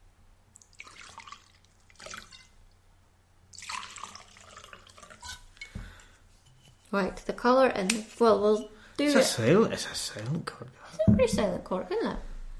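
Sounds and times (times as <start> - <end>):
wine pouring into a glass: 0.6 - 2.6, 3.5 - 5.8
speech: 6.9 - 12.3.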